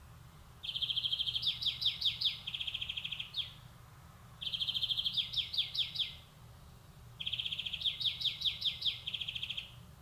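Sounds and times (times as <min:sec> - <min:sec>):
European greenfinch Chloris chloris song: 0:00.6 - 0:03.7, 0:04.4 - 0:06.3, 0:07.2 - 0:09.8.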